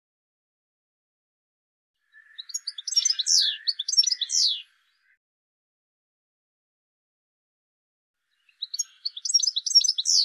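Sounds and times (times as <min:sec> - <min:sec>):
bird chirping: 0:02.0 - 0:05.2, 0:08.3 - 0:10.2.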